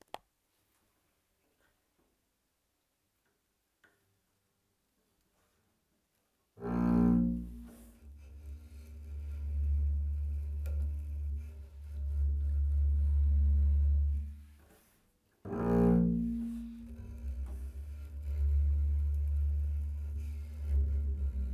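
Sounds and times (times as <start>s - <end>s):
double bass: 6.6s - 14.6s, 15.5s - 21.5s.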